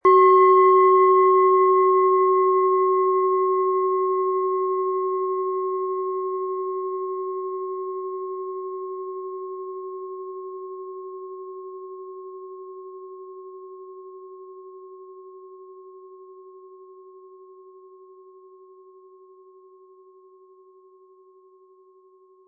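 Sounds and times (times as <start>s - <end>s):
planet singing bowl struck with a mallet: 0.0s - 17.1s.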